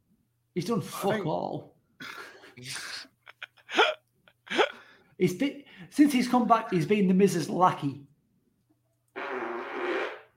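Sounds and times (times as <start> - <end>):
speech: 0.6 - 1.7, 2.6 - 2.9, 5.2 - 8.1
fart: 9.1 - 10.3.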